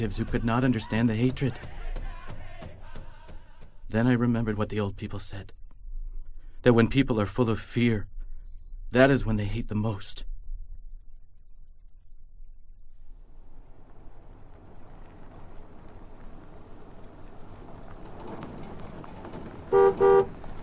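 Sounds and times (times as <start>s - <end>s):
speech: 0.0s - 1.9s, 3.9s - 5.6s, 6.6s - 8.1s, 8.9s - 10.3s
truck engine rumbling as it arrives to pick someone up: 13.3s - 20.6s
truck horn honks: 19.7s - 20.4s.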